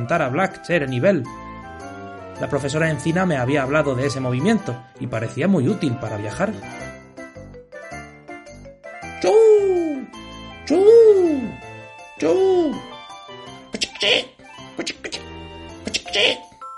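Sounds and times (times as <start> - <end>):
speech: 0.0 - 1.4, 2.4 - 6.8, 12.2 - 12.8
person imitating bird calls with hooting whoops to attract birds: 9.2 - 10.1, 10.7 - 11.6, 13.8 - 15.2, 15.9 - 16.4
short hissing clicking mouth sounds: 13.8 - 14.0, 14.8 - 16.2.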